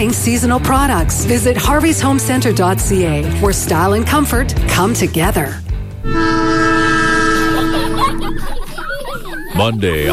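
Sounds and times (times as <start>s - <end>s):
speech: 0.0s - 6.6s, 9.6s - 10.1s
loud sustained train horn: 6.0s - 9.0s
laughter: 7.0s - 10.1s.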